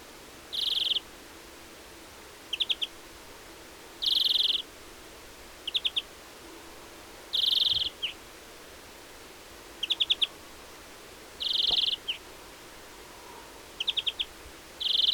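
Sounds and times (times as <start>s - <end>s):
European greenfinch Chloris chloris calling with buzzy wheezes and twittering chips: 0.5s - 1.0s, 2.5s - 2.9s, 4.0s - 4.6s, 5.7s - 6.0s, 7.3s - 8.2s, 9.8s - 10.3s, 11.4s - 12.2s, 13.8s - 15.1s.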